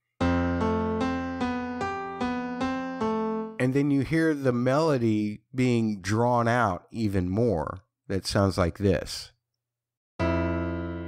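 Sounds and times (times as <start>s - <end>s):
ringing piano chords accompanying a TV series theme: 0.0s - 3.7s, 10.2s - 11.0s
speech: 3.6s - 9.4s.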